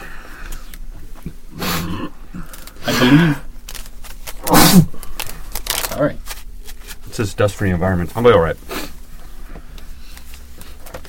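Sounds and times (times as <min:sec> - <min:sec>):
loud explosive sneezes: 0:02.8 - 0:03.5, 0:04.4 - 0:05.0
speech: 0:03.0 - 0:03.4, 0:04.7 - 0:04.9, 0:07.2 - 0:08.8.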